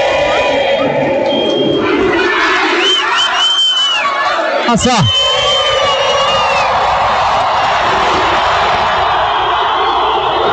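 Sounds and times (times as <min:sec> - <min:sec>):
huge stadium crowd of football fans chanting and roaring: 0:00.0 - 0:10.5
shrill whistles in a stadium: 0:01.2 - 0:01.9, 0:02.7 - 0:04.2, 0:05.0 - 0:06.7
speech: 0:04.7 - 0:05.2.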